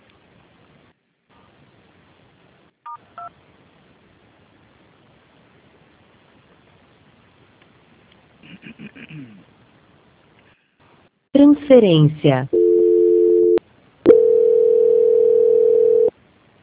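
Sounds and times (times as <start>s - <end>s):
speech: 11.4s - 12.6s
telephone keypad dialing tones: 12.6s - 16.1s.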